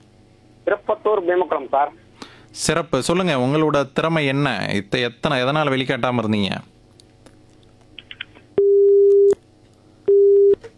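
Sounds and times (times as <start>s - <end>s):
speech: 0.7s - 6.7s
telephone busy tone after a call is cut off: 8.6s - 9.4s, 10.1s - 10.6s.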